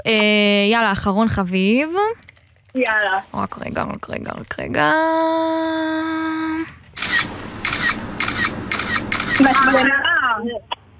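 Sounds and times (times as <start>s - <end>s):
speech: 0.0s - 2.2s, 2.8s - 7.3s, 9.4s - 10.7s
phone camera shutter clicking for a screenshot: 7.0s - 9.9s
steady electronic tone: 7.0s - 10.0s.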